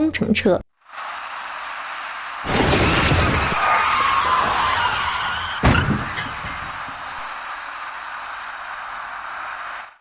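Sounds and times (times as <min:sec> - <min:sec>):
speech: 0:00.1 - 0:00.7
harsh grinding truck skidding: 0:00.9 - 0:10.0
truck tire blowout bang: 0:02.4 - 0:07.6
truck crashing into median: 0:02.4 - 0:08.1.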